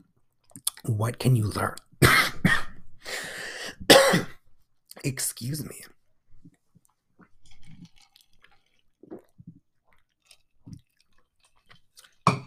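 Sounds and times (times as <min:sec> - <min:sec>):
speech: 0:00.8 - 0:02.4, 0:05.0 - 0:06.0
person sipping iced coffee through a straw: 0:07.2 - 0:12.2.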